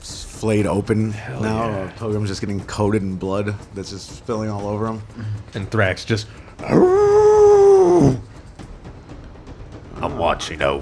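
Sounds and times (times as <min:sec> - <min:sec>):
speech: 0:00.4 - 0:08.3, 0:10.1 - 0:10.8
howl: 0:06.6 - 0:08.2.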